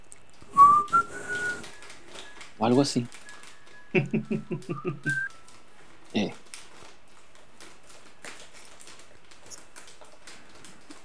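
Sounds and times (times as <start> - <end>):
person whistling a tune: 0.5 - 2.4, 3.2 - 5.4
speech: 2.6 - 3.2, 3.9 - 5.3, 6.1 - 6.4
laughter: 3.9 - 5.2.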